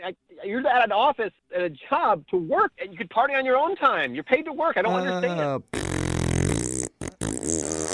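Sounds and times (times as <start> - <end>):
speech: 0.0 - 7.9
voice blowing raspberry sounds imitating farts: 5.0 - 7.9.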